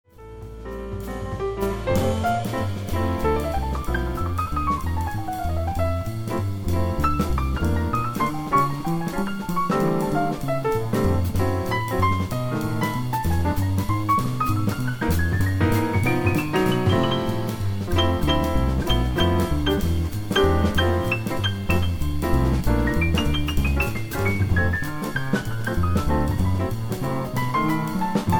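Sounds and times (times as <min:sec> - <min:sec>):
solo piano: 0:00.0 - 0:28.3.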